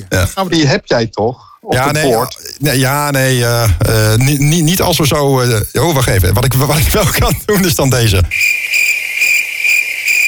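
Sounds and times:
speech: 0.0s - 8.6s
crickets chirping: 8.3s - 10.2s.

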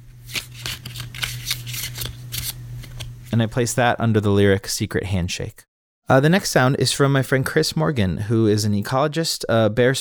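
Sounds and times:
playing cards from a card game being shuffled: 0.2s - 3.3s
speech: 3.3s - 9.9s.

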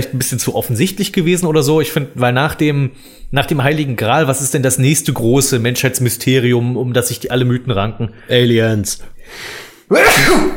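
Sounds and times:
speech: 0.0s - 10.5s
person sneezing: 9.9s - 10.5s.

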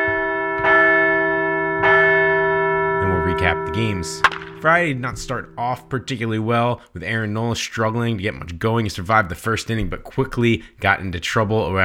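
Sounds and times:
large bell ringing: 0.0s - 6.5s
speech: 3.4s - 11.8s.

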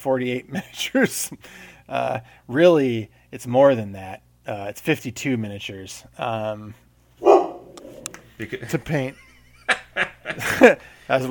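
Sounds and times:
speech: 0.0s - 7.3s, 8.4s - 11.2s
dog barking: 7.2s - 8.0s
laughter: 8.4s - 11.1s.

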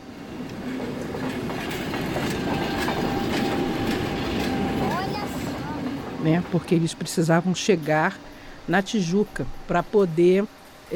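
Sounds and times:
train rolling along rails with clickety-clack: 0.0s - 8.1s
speech: 6.2s - 10.9s.

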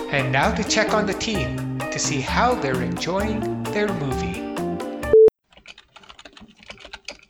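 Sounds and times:
speech: 0.1s - 4.5s
fast forceful typing on a computer keyboard: 5.5s - 7.2s.

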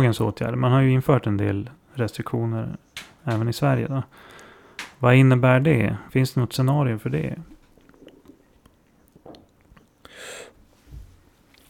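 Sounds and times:
speech: 0.0s - 4.4s, 5.0s - 7.5s
person sipping and swallowing water: 7.7s - 10.4s.

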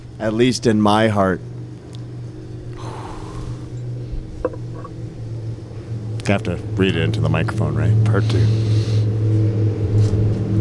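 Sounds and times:
broad hiss: 0.0s - 4.9s, 8.2s - 9.4s
car engine rumble passing outside: 0.0s - 10.5s
speech: 0.2s - 1.5s, 6.3s - 8.8s.

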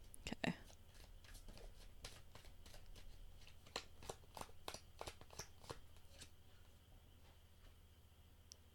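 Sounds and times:
quiet room hum: 0.0s - 8.7s
tarot cards being shuffled: 0.8s - 6.4s.

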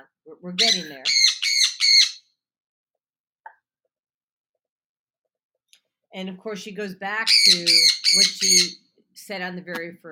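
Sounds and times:
speech: 0.3s - 1.3s, 6.1s - 10.0s
parrot squawking: 0.5s - 2.3s, 7.3s - 8.8s.

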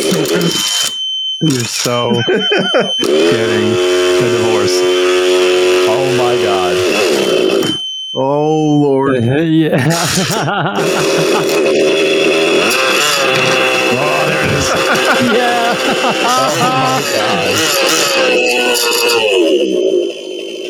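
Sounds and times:
laughter: 0.0s - 0.8s, 1.4s - 4.8s, 9.1s - 11.8s, 12.6s - 19.3s
speech: 0.4s - 5.0s, 8.2s - 11.9s, 15.0s - 20.6s
nitro RC model engine running indoors: 2.9s - 7.8s, 9.9s - 19.7s.

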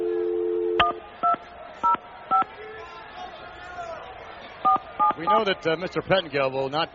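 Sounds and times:
telephone dial tone: 0.0s - 1.0s
touch-tone telephone beeps as a number is punched in: 0.0s - 1.4s
speech: 5.2s - 6.9s.

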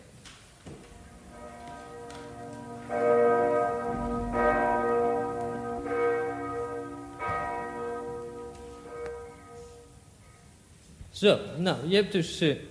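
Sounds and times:
large church bells ringing: 0.8s - 10.4s
speech: 11.2s - 12.7s.

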